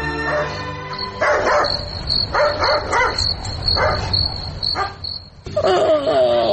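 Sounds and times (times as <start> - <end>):
dog barking at night: 0.2 - 5.1
crickets chirping: 0.3 - 6.3.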